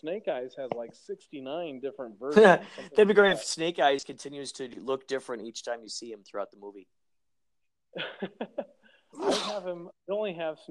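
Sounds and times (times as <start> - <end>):
speech: 0.0 - 7.0, 7.9 - 10.6
person sneezing: 9.2 - 9.7.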